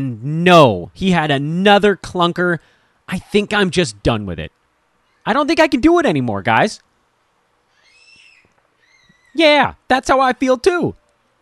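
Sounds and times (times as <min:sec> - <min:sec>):
speech: 0:00.0 - 0:04.6, 0:05.2 - 0:06.9, 0:09.4 - 0:11.0
shrill wavering baby-like scream sound effect: 0:07.7 - 0:09.4.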